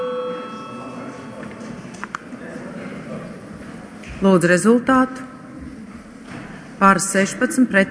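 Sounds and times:
steady electric parliament voting bell ringing: 0.0 - 1.4
speech: 4.2 - 5.3, 6.8 - 7.8.

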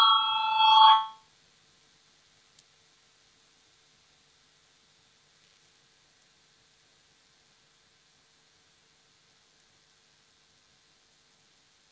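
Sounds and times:
parliamentary voting bell ringing: 0.0 - 1.2.

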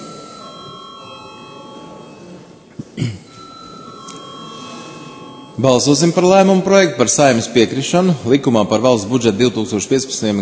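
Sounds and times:
electric bell ringing in a parliament chamber before a vote: 0.0 - 2.4, 3.3 - 6.1
speech: 3.0 - 3.2, 5.6 - 10.4.

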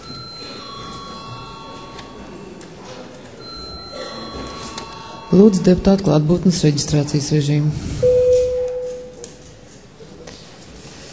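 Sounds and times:
electric bell ringing in a parliament session: 0.0 - 6.3, 8.0 - 9.3
faint murmur of voices: 0.0 - 11.1
speech: 5.3 - 8.0.

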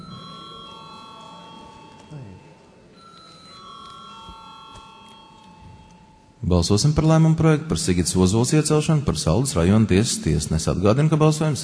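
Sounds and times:
murmur of voices in a parliament chamber: 0.0 - 5.6, 6.4 - 11.6
bell ringing in a parliament chamber before a vote: 0.0 - 6.4
speech: 6.5 - 11.6.

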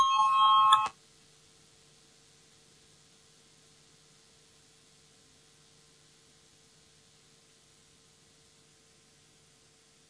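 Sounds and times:
electric voting call bell ringing: 0.0 - 0.9.

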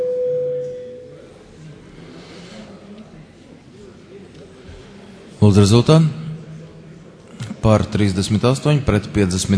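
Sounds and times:
parliamentary voting electronic bell tone: 0.0 - 1.2
faint room murmur: 0.4 - 9.5
speech: 5.4 - 6.2, 7.6 - 9.5.

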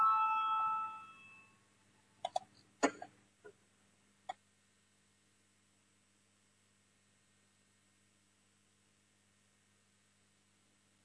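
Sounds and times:
electronic parliamentary voting bell ringing: 0.0 - 1.6.

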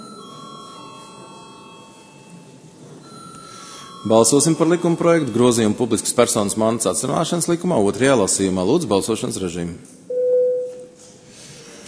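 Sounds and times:
parliamentary bell calling a vote on a bill: 0.0 - 5.8, 10.1 - 11.0
speech: 4.0 - 10.1.

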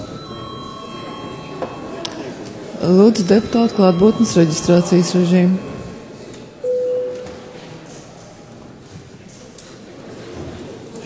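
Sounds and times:
parliament session bell ringing: 0.0 - 7.6
low murmur and shuffling of the parliament chamber: 0.0 - 11.0
speech: 2.8 - 5.7.

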